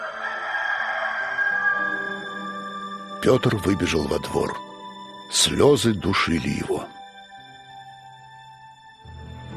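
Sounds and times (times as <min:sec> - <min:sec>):
rooster crowing: 0:00.0 - 0:02.6
speech: 0:03.2 - 0:04.7, 0:05.3 - 0:07.0.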